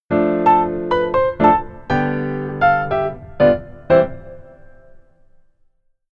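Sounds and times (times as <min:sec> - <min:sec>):
keyboard solo played with the left hand: 0:00.1 - 0:05.0.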